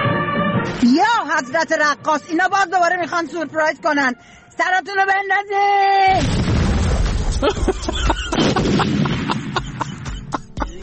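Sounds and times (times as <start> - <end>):
speech: 0.6 - 6.4, 7.4 - 9.0
loud explosion boom: 6.2 - 9.8
laughter: 7.4 - 10.8.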